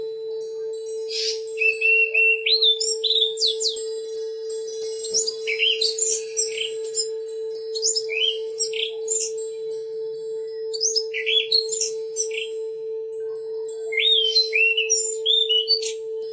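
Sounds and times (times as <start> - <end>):
Oriental magpie-robin song of clear whistled phrases: 0.4 - 9.7, 10.4 - 16.3.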